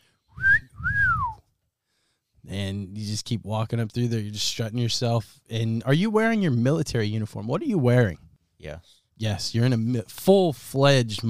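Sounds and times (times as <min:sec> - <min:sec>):
two-part wolf whistle by a person in the street: 0:00.3 - 0:01.4
speech: 0:02.5 - 0:11.2.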